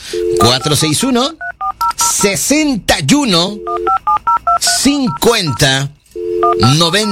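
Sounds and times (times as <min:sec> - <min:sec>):
touch-tone dialing of a phone number: 0:00.2 - 0:00.8, 0:01.4 - 0:02.4, 0:03.6 - 0:07.1
person talking: 0:00.4 - 0:01.4, 0:02.0 - 0:03.7, 0:04.6 - 0:06.0, 0:06.6 - 0:07.1.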